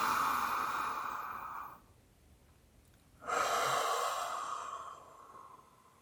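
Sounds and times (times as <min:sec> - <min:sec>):
slow deep breathing during a guided mindfulness meditation: 0:00.0 - 0:01.8, 0:03.2 - 0:06.0.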